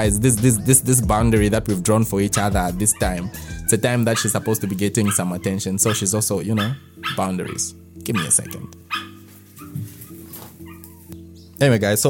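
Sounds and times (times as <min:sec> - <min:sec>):
speech: 0:00.0 - 0:09.1, 0:11.6 - 0:12.0
dog barking and whining: 0:02.3 - 0:11.2.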